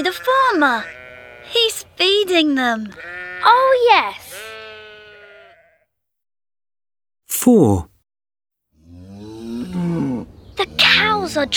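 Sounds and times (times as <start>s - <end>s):
lamb bleating on a farm: 0.0s - 1.7s, 2.9s - 5.8s
speech: 0.0s - 4.4s, 7.4s - 7.9s, 10.6s - 11.5s.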